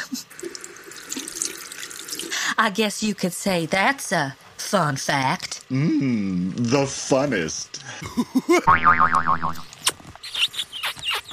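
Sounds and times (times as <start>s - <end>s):
water from a faucet splashing into a sink: 0.0s - 2.6s
speech: 2.6s - 9.7s
laughter: 8.0s - 8.7s.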